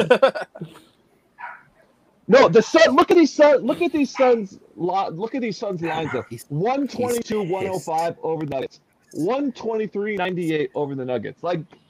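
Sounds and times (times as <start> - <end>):
laughter: 0.0 - 0.8, 5.8 - 8.1
speech: 0.0 - 0.8, 2.3 - 11.8
dog barking: 1.4 - 1.7, 5.9 - 6.3
dog yelping: 1.4 - 1.8, 5.9 - 6.3.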